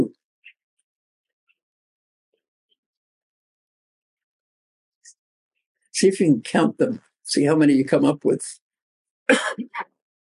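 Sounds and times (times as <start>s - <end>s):
speech: 6.0s - 8.6s, 9.3s - 9.9s
person in the audience coughing: 9.3s - 9.8s.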